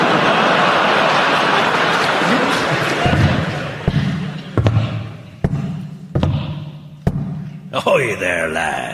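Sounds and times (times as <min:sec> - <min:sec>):
laughter: 0:00.0 - 0:05.3
heavy wooden leg footsteps thumping at a limping pace: 0:03.0 - 0:07.6
speech: 0:08.0 - 0:08.9.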